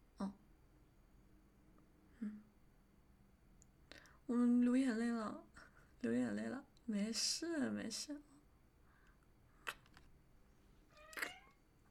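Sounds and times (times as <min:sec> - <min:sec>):
speech: 0:04.3 - 0:05.4, 0:06.0 - 0:08.3
cat meowing: 0:10.9 - 0:11.6.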